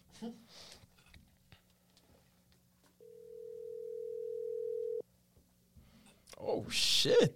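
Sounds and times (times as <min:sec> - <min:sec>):
speech: 0:00.2 - 0:00.7, 0:06.4 - 0:07.3
ringback tone from an outgoing phone call: 0:03.0 - 0:05.0.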